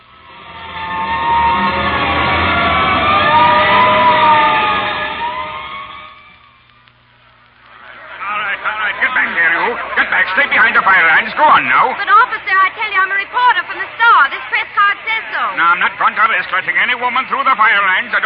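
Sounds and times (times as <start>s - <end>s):
fire engine siren wailing: 0.0s - 6.7s, 7.9s - 12.7s
harsh noise: 0.0s - 18.2s
laughter: 7.7s - 16.1s.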